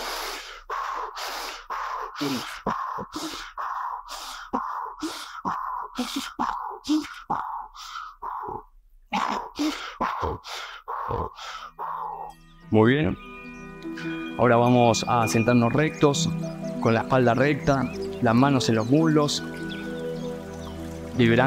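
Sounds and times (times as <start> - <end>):
forceful diaphragm exhalations in a breathing exercise: 0.0 - 8.7, 9.5 - 12.3
speech: 2.2 - 3.5, 12.7 - 13.3, 14.4 - 19.6, 21.2 - 21.4.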